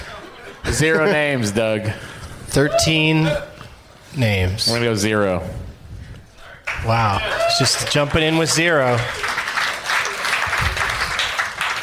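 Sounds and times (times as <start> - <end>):
speech: 0.7 - 3.5, 4.1 - 5.7, 6.8 - 9.4
audience applause: 6.7 - 11.8.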